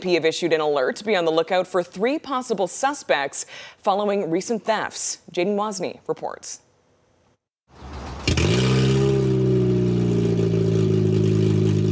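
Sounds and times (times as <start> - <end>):
speech: 0.0 - 6.6
car engine with stolen catalytic converter starting and roaring: 7.7 - 11.9.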